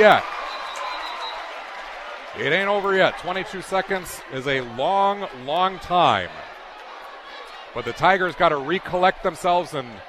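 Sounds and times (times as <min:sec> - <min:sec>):
speech: 0:00.0 - 0:00.3, 0:02.4 - 0:06.5, 0:07.7 - 0:10.0
basketball arena crowd clapping: 0:00.0 - 0:06.2
basketball arena crowd cheering: 0:00.0 - 0:10.0.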